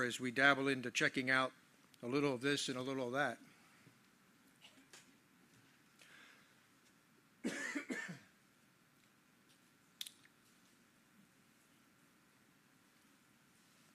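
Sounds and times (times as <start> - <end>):
speech: 0.0 - 3.5
harsh double cough: 7.4 - 8.3.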